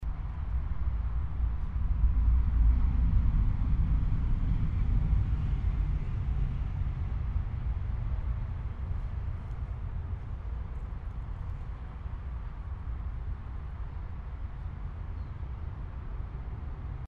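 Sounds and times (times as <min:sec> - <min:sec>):
motorway noise: 0:00.0 - 0:17.0
train: 0:00.0 - 0:17.0.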